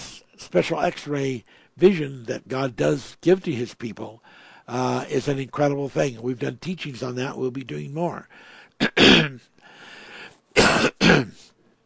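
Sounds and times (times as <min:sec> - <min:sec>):
speech: 0:00.5 - 0:09.5
loud sneeze-like bursts: 0:08.8 - 0:09.4, 0:10.6 - 0:11.5.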